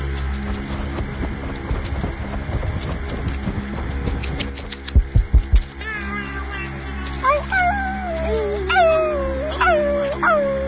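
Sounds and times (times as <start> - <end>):
dull thumps: 0.2 - 5.8
person imitating a puppy or coyote with whimpers and howls: 5.8 - 10.6.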